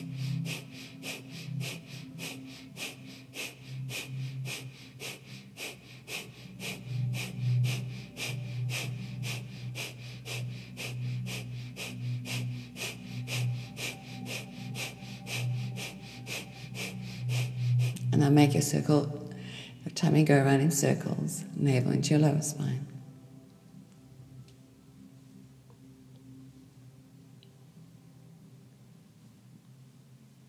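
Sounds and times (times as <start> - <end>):
breath of fire breathing during a guided breathing exercise: 0.0 - 18.1
speech: 18.2 - 19.2, 20.0 - 23.0.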